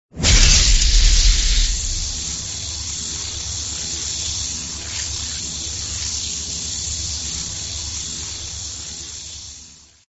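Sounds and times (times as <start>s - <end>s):
thunder: 0.1s - 2.4s.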